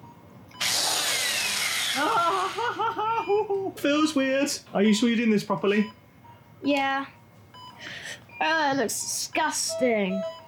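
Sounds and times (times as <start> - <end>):
power drill whirring: 0.6 - 2.6
laughter: 2.0 - 3.8
speech: 2.0 - 6.0, 6.6 - 7.2, 7.8 - 10.4.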